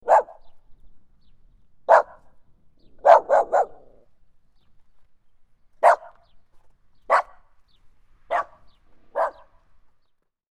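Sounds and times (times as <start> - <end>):
puppy barking in short high yappy barks: 0.0 - 0.5, 1.9 - 2.3, 3.0 - 4.1, 5.8 - 6.3, 7.1 - 7.5, 8.3 - 9.6.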